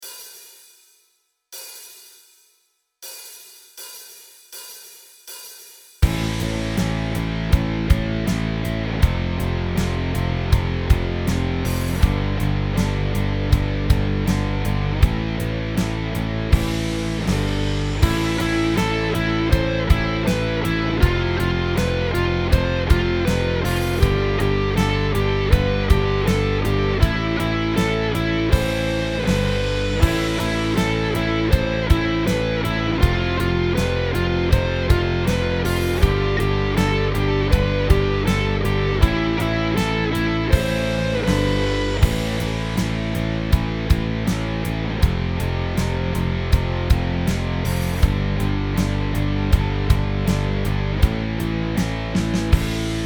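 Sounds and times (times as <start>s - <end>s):
power chord song: 6.0s - 53.0s.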